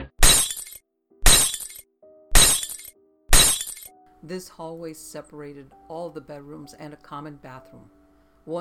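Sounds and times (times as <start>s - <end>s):
mirror glass crashing and shattering: 0.2s - 3.9s
speech: 4.3s - 8.5s.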